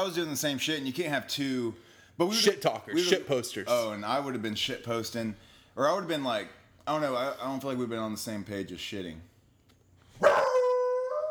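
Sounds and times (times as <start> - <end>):
speech: 0.0 - 9.3
dog barking and howling at another dog: 10.2 - 11.2.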